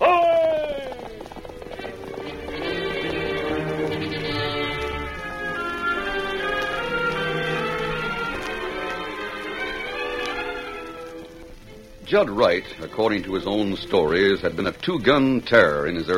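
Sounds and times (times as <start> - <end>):
high neigh-like cry: 0.0 - 1.1
rapid galloping horse hoofbeats: 0.0 - 16.1
loud sweeping orchestral theme: 1.6 - 16.1
speech: 12.1 - 16.1.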